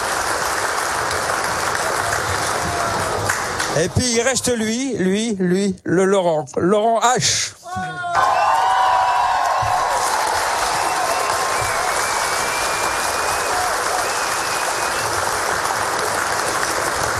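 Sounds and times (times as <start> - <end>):
applause from a large audience: 0.0 - 4.6, 8.1 - 17.1
whoops and cheers: 1.9 - 3.3, 7.7 - 15.3
speech: 3.8 - 8.4.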